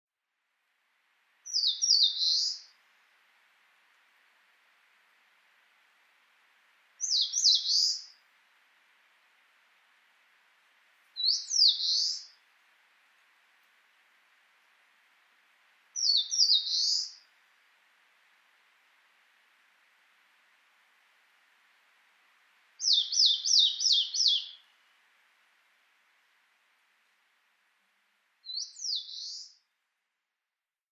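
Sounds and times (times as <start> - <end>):
eastern crowned warbler in Chichibu: 1.5 - 2.7, 7.0 - 8.2, 11.2 - 12.4, 16.0 - 17.2, 22.8 - 24.6, 28.5 - 29.6.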